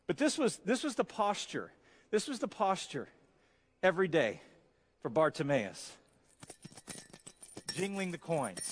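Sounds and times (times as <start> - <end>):
speech: 0.1 - 3.2, 3.8 - 6.0, 7.8 - 8.6
coins jingling and clinking in a cup: 6.2 - 8.6.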